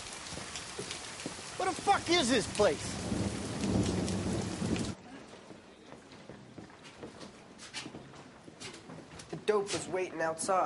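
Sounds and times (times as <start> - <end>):
drips and splashes: 0.0 - 5.0
heavy rain: 0.0 - 5.8
speech: 1.6 - 3.2, 9.5 - 10.6.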